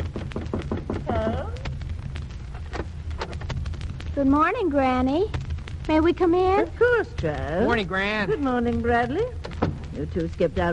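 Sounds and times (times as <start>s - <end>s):
knocking on a door: 0.0s - 1.2s
faint noise: 0.0s - 10.7s
speech: 4.2s - 9.4s, 10.0s - 10.7s.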